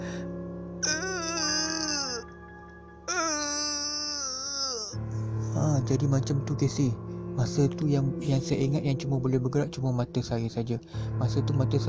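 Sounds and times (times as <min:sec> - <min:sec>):
voice imitating choked cries while straining to scream: 0:00.8 - 0:02.3, 0:03.1 - 0:05.0
speech: 0:05.9 - 0:11.8.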